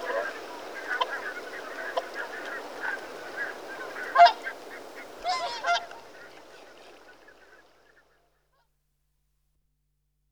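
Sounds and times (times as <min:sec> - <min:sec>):
mute swan Cygnus olor honking: 0:00.0 - 0:06.2.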